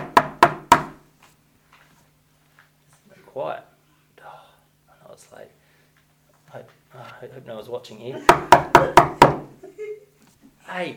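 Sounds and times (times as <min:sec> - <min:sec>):
firm knocking on a door: 0:00.0 - 0:01.0, 0:08.2 - 0:09.5
speech: 0:07.2 - 0:09.4, 0:10.8 - 0:10.9.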